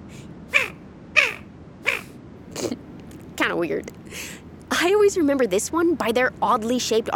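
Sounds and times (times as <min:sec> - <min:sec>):
Barrow's Goldeneye call from a bird-call keychain: 0:00.0 - 0:02.2
speech: 0:03.5 - 0:07.1.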